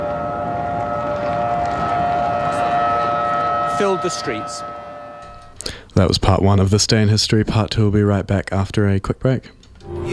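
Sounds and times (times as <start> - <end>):
air raid sirens wailing through deserted streets: 0.0 - 5.9
speech: 3.8 - 4.8, 6.0 - 10.1.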